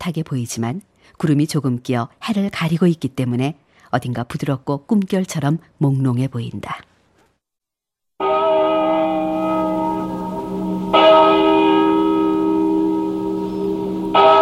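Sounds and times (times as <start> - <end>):
speech: 0.0 - 6.9
deep church bell tolling: 8.2 - 14.4.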